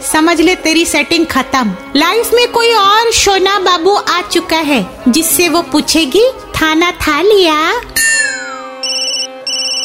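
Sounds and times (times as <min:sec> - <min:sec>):
speech: 0:00.2 - 0:07.9
phone ringtone for an incoming call: 0:08.0 - 0:09.8.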